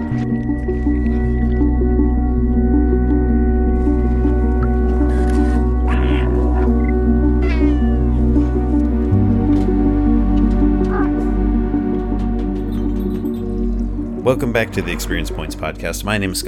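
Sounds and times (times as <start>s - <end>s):
steady droning music: 0.0s - 16.4s
cat meowing: 5.9s - 8.4s
speech: 14.3s - 16.4s.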